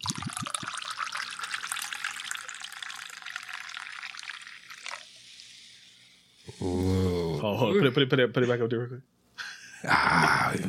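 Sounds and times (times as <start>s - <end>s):
liquid pouring into a glass: 0.0s - 6.0s
speech: 6.6s - 9.2s, 9.8s - 10.6s.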